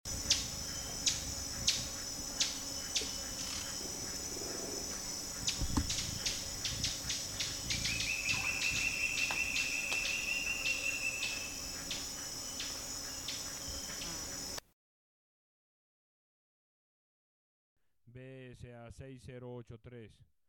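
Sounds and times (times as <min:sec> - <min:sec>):
Fiery topaz calls, sharp high ticks and thin rapid trill: 0:00.1 - 0:14.6
steady background hiss: 0:00.1 - 0:14.6.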